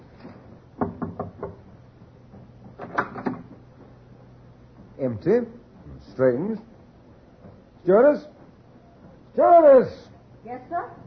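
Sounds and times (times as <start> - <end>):
knocking on a ship's cabin door: 0.8 - 3.6
speech: 5.0 - 5.6, 6.2 - 6.7, 7.8 - 8.3, 9.4 - 11.0.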